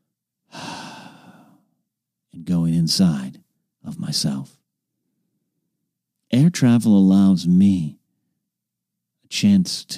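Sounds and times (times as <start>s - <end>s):
deep breath inhale: 0.5s - 1.7s
speech: 2.4s - 4.6s, 6.3s - 8.0s, 9.3s - 9.9s.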